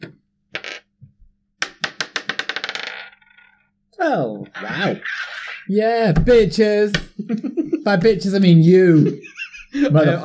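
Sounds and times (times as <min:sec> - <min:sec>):
dice clacking on a hard table: 0:00.5 - 0:00.9, 0:01.6 - 0:03.6
dice rattling: 0:01.7 - 0:03.6
speech: 0:04.0 - 0:10.2
laughter: 0:07.1 - 0:08.1, 0:08.8 - 0:10.2.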